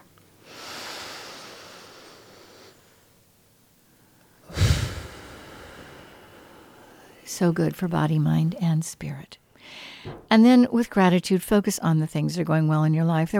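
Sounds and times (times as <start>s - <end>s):
deep breath taken during guided relaxation: 0.4s - 3.1s, 4.4s - 7.2s, 9.6s - 10.2s
speech: 7.3s - 13.3s.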